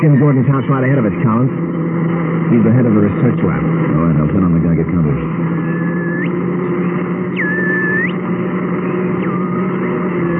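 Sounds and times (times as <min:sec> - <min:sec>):
speech: 0:00.0 - 0:05.6
car engine running while driving: 0:00.0 - 0:10.3
thin whining tone: 0:00.0 - 0:10.3.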